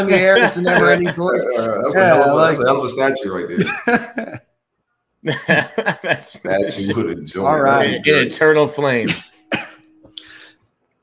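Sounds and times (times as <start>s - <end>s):
laughter: 0.0s - 4.5s, 5.2s - 8.0s, 8.9s - 9.8s
speech: 0.0s - 4.5s, 5.2s - 9.3s
person coughing: 9.0s - 9.9s.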